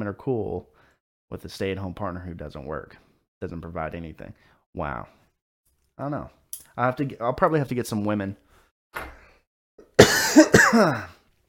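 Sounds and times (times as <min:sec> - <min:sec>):
speech: 0:00.0 - 0:00.7, 0:01.3 - 0:05.2, 0:06.0 - 0:09.2, 0:10.3 - 0:11.2
harsh coughing from vaping: 0:09.8 - 0:11.2.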